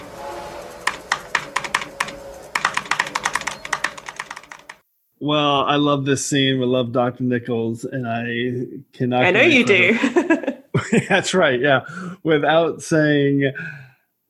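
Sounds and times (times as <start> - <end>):
typing on a computer keyboard: 0.9 - 4.8
speech: 5.3 - 14.2
laughter: 9.3 - 11.4.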